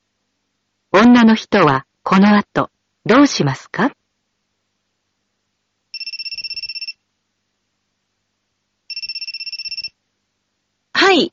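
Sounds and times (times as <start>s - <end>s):
speech: 1.0s - 4.0s, 11.1s - 11.3s
telephone ringing in electronic trilling bursts: 5.9s - 7.0s, 8.9s - 10.0s.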